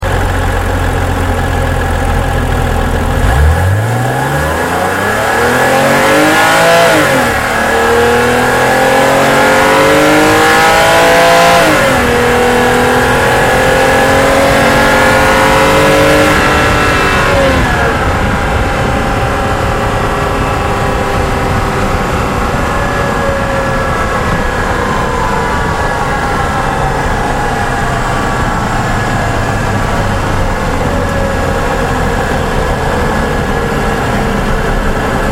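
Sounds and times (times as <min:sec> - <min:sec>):
Z4 car accelerating outside: 0:00.0 - 0:35.3.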